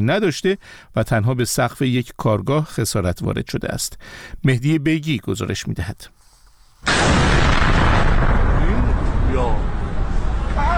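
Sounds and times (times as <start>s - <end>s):
speech: 0.0s - 6.2s, 6.8s - 7.5s
explosion from a drone attack at night: 6.8s - 10.7s.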